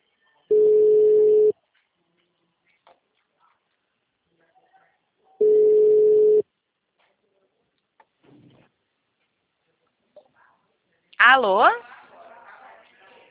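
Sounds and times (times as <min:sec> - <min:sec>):
phone ringback tone while placing a call: 0:00.5 - 0:01.5, 0:05.4 - 0:06.4
speech: 0:11.3 - 0:11.9.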